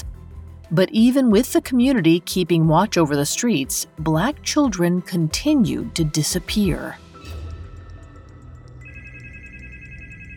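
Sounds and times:
speech: 0.7 - 7.0
home telephone bell ringing: 8.8 - 10.3.

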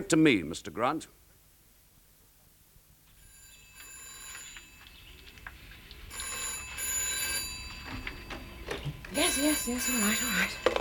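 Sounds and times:
speech: 0.0 - 1.2, 9.4 - 10.7
old-fashioned telephone bell ringing: 3.2 - 5.4, 6.0 - 10.7.

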